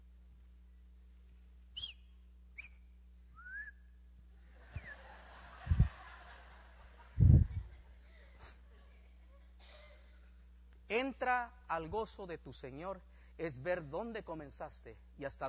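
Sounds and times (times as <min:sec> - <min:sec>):
person whistling short sliding notes: 0:01.8 - 0:04.0
low bursts: 0:04.5 - 0:06.3, 0:07.0 - 0:08.7
laughter: 0:04.5 - 0:10.3
speech: 0:10.9 - 0:15.4.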